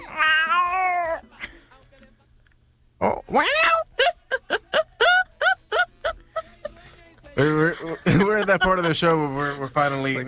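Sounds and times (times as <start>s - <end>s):
cat meowing: 0.0s - 1.2s, 3.3s - 3.9s
speech: 3.0s - 3.8s, 7.4s - 10.2s
laughter: 3.8s - 10.2s.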